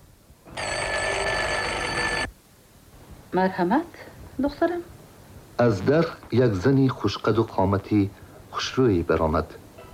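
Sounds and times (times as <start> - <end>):
faint noise: 0.0 - 9.9
electric doorbell ringing after button is pressed: 0.6 - 2.3
speech: 3.3 - 4.9, 5.6 - 9.6.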